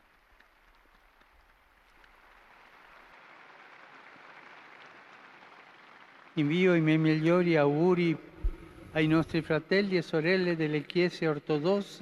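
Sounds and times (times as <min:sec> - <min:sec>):
large crowd applauding a newly beatified man: 0:00.0 - 0:09.3
speech: 0:06.4 - 0:08.3, 0:09.0 - 0:12.0.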